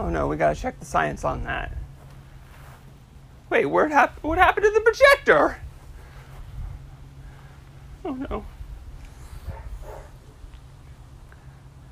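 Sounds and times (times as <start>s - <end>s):
scattered soft noise: 0.0s - 11.9s
steady low hum: 0.0s - 11.9s
speech: 0.1s - 1.8s, 3.5s - 5.6s, 8.0s - 8.5s
faint dogs barking: 9.1s - 10.6s.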